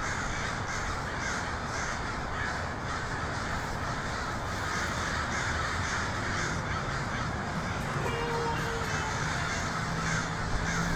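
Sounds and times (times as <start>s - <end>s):
many crows cawing in Portland: 0.0s - 10.9s.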